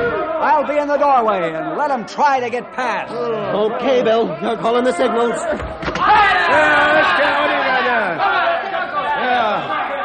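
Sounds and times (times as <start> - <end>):
speech: 0.6 - 7.4
angry crowd of men shouting at an opened doorway: 6.0 - 10.0.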